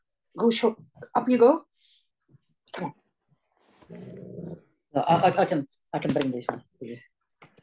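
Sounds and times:
speech: 0.4 - 1.9, 2.7 - 3.0, 3.9 - 7.1
female Afghan hound growling: 3.9 - 4.8.

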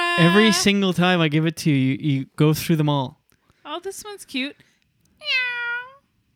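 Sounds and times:
electronic cat meow from a sound-effect toy: 0.0 - 0.7
speech: 0.2 - 3.2, 3.8 - 5.5.

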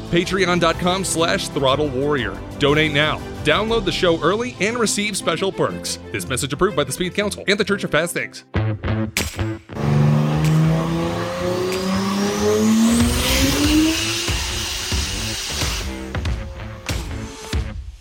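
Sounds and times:
speech: 0.1 - 9.6
2JZ-swapped RX-8 sports car engine revving: 9.8 - 17.6.

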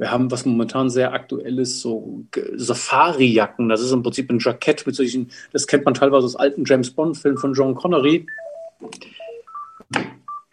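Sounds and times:
speech: 0.0 - 9.2, 9.9 - 10.2
telephone ringing with short electronic beeping tones: 8.2 - 10.5.

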